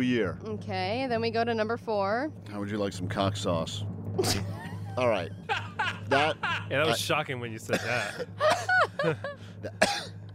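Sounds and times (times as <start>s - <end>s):
speech: 0.0s - 10.1s
laughter: 4.2s - 7.0s, 7.7s - 9.8s
throat clearing: 7.7s - 8.3s, 9.7s - 10.1s.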